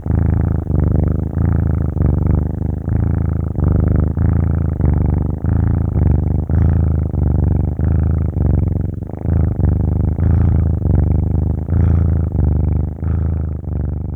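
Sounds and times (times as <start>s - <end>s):
kitten purring: 0.0s - 14.1s.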